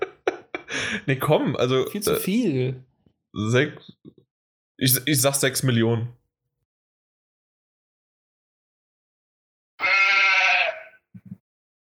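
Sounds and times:
laughter: 0:00.0 - 0:01.1
speech: 0:00.7 - 0:04.2, 0:04.8 - 0:06.2
sheep-like bleat wrong-answer sound effect: 0:09.8 - 0:11.0.

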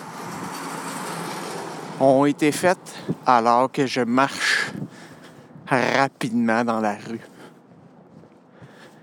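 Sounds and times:
car passing by on a street: 0:00.0 - 0:03.2
speech: 0:02.0 - 0:04.9, 0:05.7 - 0:07.3.

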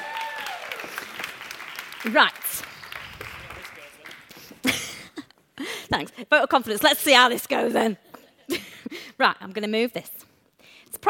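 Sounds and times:
crowd clapping for two assistants: 0:00.0 - 0:04.7
speech: 0:02.0 - 0:02.7, 0:05.9 - 0:08.0, 0:09.2 - 0:10.2.

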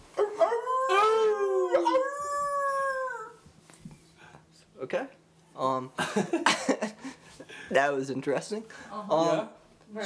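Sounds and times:
dog howling: 0:00.2 - 0:03.5
speech: 0:05.8 - 0:06.6, 0:07.7 - 0:10.0.

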